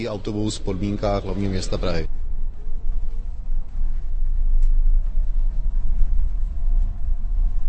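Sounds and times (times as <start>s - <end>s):
voices: 0.0s - 2.2s
electric bus rolling over cobblestones: 0.0s - 7.6s.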